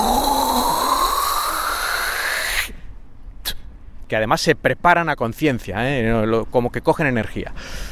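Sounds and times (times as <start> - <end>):
voice imitating raspy gurgling throat hawking: 0.0 - 2.7
brief sharp spit-like burst: 0.0 - 2.8
speech: 4.1 - 7.8.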